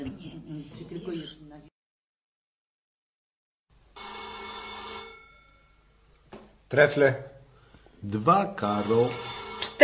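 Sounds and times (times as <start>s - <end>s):
telephone bell ringing: 4.0s - 5.9s, 8.6s - 9.8s
speech: 6.7s - 7.3s, 8.0s - 9.8s.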